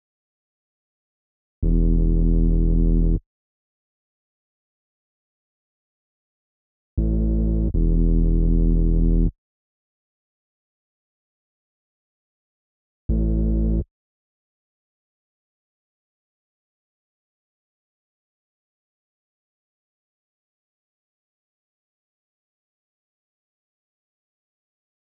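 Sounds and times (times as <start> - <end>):
reversed bass melody loop in E minor: 1.6 - 3.2, 7.0 - 9.3.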